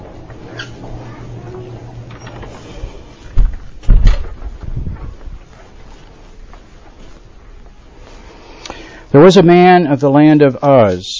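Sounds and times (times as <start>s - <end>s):
low handling noise: 0.0s - 8.4s
quiet shuffling and rustling: 0.0s - 8.6s
door closing with a solid thud: 3.3s - 5.2s
speech: 9.2s - 11.1s.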